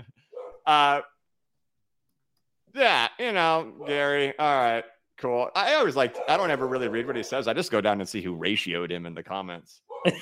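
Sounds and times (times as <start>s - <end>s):
dog barking loudly: 0.3s - 0.7s, 3.8s - 4.2s, 6.0s - 7.4s, 9.9s - 10.1s
speech: 0.7s - 1.1s, 2.8s - 10.1s.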